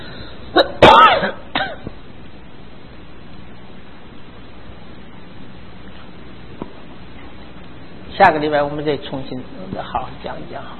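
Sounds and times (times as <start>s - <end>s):
coughing: 0.5s - 2.0s
speech: 8.2s - 10.7s.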